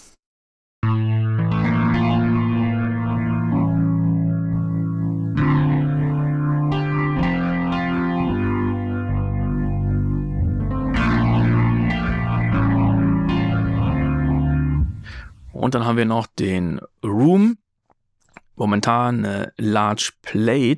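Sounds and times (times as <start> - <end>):
sustained chords through a rotary speaker effect: 0.8 - 15.3
steady low bass line: 0.8 - 15.7
speech: 15.7 - 17.6, 18.6 - 20.7.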